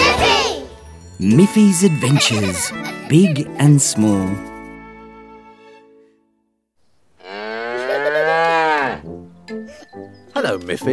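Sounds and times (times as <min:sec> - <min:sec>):
speech: 0:01.2 - 0:04.5, 0:10.4 - 0:10.9
laughter: 0:01.7 - 0:03.9, 0:07.8 - 0:08.6
cow mooing on a farm: 0:07.2 - 0:09.1.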